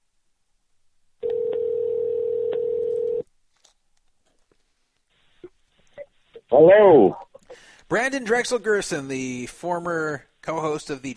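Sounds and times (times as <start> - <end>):
telephone call ringing with a long electronic tone: 1.2 - 3.2
speech: 6.5 - 7.2, 7.9 - 11.1.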